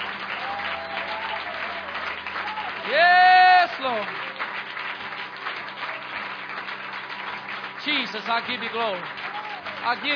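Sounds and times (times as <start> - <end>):
audience of believers clapping and cheering at a worship service: 0.0 - 10.1
faint whoops and voices: 0.3 - 3.6, 9.3 - 9.8
speech: 8.1 - 9.2, 9.8 - 10.1.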